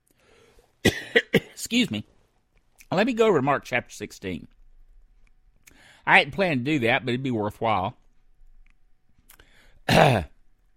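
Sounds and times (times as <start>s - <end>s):
preacher with a tickling throat clearing throat during a sermon: 0.8s - 1.6s, 9.9s - 10.4s
speech: 1.7s - 2.1s, 2.9s - 4.6s, 6.1s - 8.0s, 9.9s - 10.3s.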